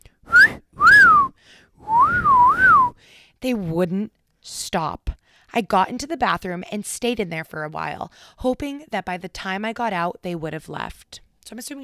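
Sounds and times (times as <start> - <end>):
men catcall-whistling at a woman: 0.3 - 1.3, 1.9 - 2.9
speech: 3.4 - 11.8.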